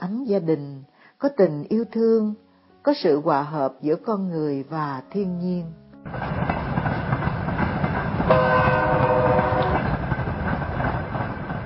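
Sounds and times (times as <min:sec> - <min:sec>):
speech: 0:00.3 - 0:06.3
train wheels clattering on rails: 0:06.1 - 0:11.6
train horn: 0:08.2 - 0:10.1.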